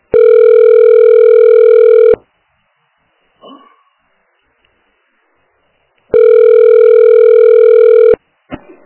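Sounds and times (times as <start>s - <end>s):
electronic telephone ringback tone while calling a health clinic: 0.1s - 2.2s, 6.1s - 8.2s.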